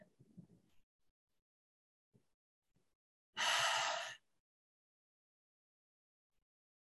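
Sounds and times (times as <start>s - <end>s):
deep breath taken together during a guided hand-on-heart practice: 3.4s - 4.2s.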